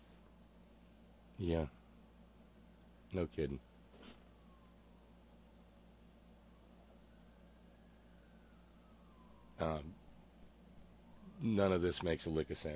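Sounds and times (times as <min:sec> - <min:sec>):
hum: 0:00.0 - 0:12.7
speech: 0:01.4 - 0:01.8, 0:03.1 - 0:03.7, 0:09.6 - 0:10.0, 0:11.4 - 0:12.7
emergency vehicle sirens wailing faintly in the distance: 0:04.0 - 0:12.7.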